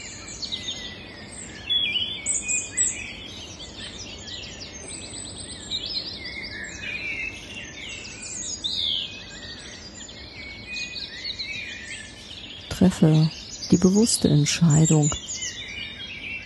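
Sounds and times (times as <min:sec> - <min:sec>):
birds chirping and singing outdoors: 0:00.0 - 0:16.4
soft steady hiss: 0:12.7 - 0:15.2
speech: 0:12.8 - 0:15.2.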